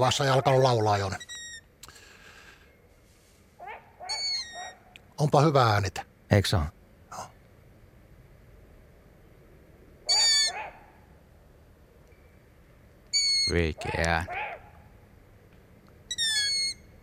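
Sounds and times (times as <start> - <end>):
speech: 0.0 - 1.3, 5.2 - 7.3, 13.5 - 14.4
long-eared owl adult alarm calls: 0.0 - 1.7, 3.6 - 4.9, 10.0 - 11.1, 13.1 - 15.0, 16.0 - 17.0.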